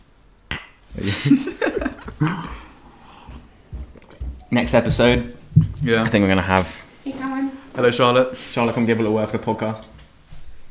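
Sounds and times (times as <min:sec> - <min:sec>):
glasses clinking together in a birthday toast: 0:00.5 - 0:00.9
speech: 0:00.9 - 0:02.6, 0:04.5 - 0:06.8, 0:07.8 - 0:10.0
laughter: 0:01.0 - 0:02.8.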